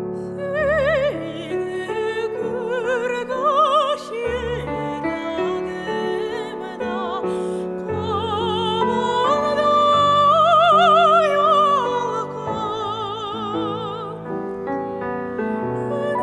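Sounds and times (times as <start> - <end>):
vocals: 0.2 - 16.2.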